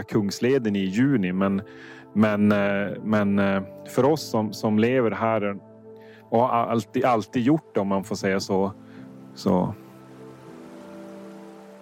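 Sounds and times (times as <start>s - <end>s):
speech: 0.0s - 5.7s, 6.3s - 8.8s, 9.4s - 9.8s
swollen overfilled forest creek in old-growth forest nature reserve in Norrbotten Sweden: 8.7s - 11.7s.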